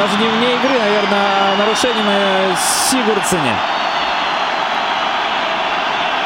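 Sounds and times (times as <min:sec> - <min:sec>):
speech: 0:00.0 - 0:03.8
big stadium crowd whistling in protest at a disputed goal during a football match: 0:00.0 - 0:06.2.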